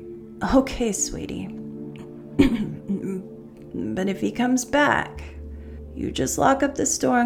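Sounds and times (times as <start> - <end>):
speech: 0.4 - 1.6, 2.4 - 2.8, 4.0 - 5.4, 6.0 - 7.2
person coughing: 2.4 - 3.2.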